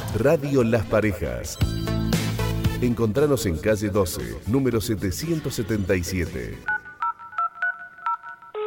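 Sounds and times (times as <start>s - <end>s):
speech: 0.1s - 2.0s, 2.8s - 6.7s
touch-tone telephone dialing beeps: 6.7s - 8.6s.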